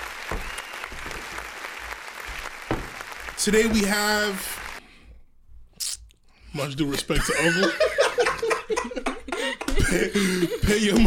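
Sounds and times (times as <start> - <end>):
crowd applauding: 0.0 - 4.8
sharp loud claps: 0.0 - 4.8
speech: 3.4 - 4.6, 6.6 - 8.0, 9.8 - 11.0
laughter: 7.1 - 11.0.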